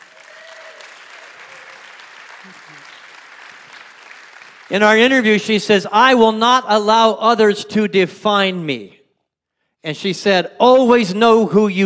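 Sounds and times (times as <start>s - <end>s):
audience applauding and cheering: 0.0s - 5.1s
speech: 2.4s - 3.0s, 4.7s - 9.0s, 9.8s - 11.8s.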